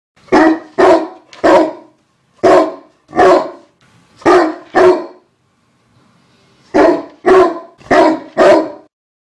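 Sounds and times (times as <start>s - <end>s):
dog barking: 0.3s - 5.3s, 6.7s - 8.9s.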